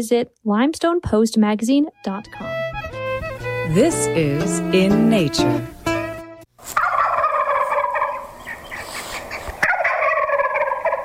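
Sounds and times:
speech: 0.0 - 2.5, 3.7 - 5.8
wild turkey gobbling: 6.7 - 11.0.

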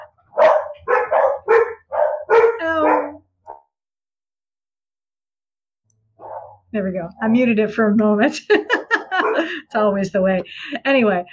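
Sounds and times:
dogs barking: 0.0 - 3.7, 6.2 - 6.7, 8.7 - 9.6
dog whiny yelp: 0.3 - 3.6, 6.2 - 6.6, 8.9 - 9.5
speech: 6.8 - 8.8, 9.4 - 11.3
laughter: 8.2 - 9.8.

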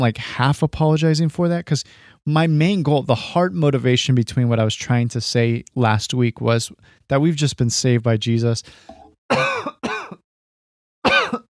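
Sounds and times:
speech: 0.0 - 9.7
person clearing throat from a peanut lodged in the throat: 8.9 - 10.2, 11.0 - 11.5.

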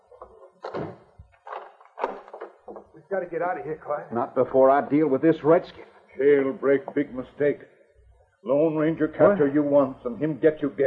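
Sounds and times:
heavy wooden door swinging shut: 0.2 - 3.0
speech: 3.1 - 7.7, 8.4 - 10.8.

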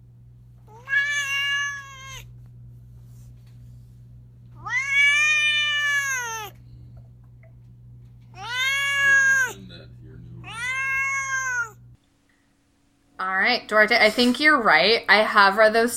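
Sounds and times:
faint steady low hum: 0.0 - 15.9
male pet cat meowing: 0.7 - 2.3, 4.6 - 6.6, 8.3 - 9.6, 10.4 - 11.8
speech: 13.7 - 15.9.

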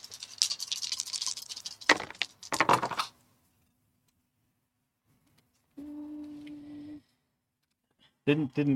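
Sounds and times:
dice clattering across a hard tabletop: 0.0 - 3.1.

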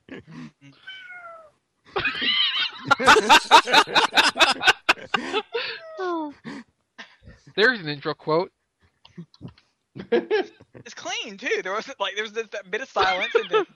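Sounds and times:
agitated cat meowing and yowling: 0.9 - 1.5
laughter: 1.9 - 5.8, 10.0 - 10.9, 13.0 - 13.7
speech: 2.9 - 4.7, 7.6 - 8.6, 10.1 - 13.7.

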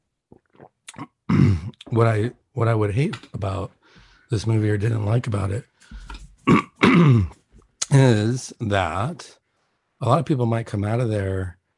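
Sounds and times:
loud harsh cough: 1.3 - 1.8, 6.4 - 7.4
speech: 1.9 - 5.7, 7.0 - 9.4, 10.0 - 11.6.

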